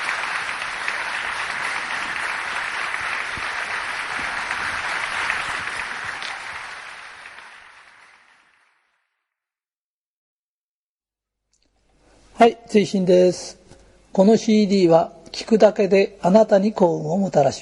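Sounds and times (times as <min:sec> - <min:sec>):
large audience applause: 0:00.0 - 0:09.1
speech: 0:12.4 - 0:13.6, 0:14.2 - 0:17.6.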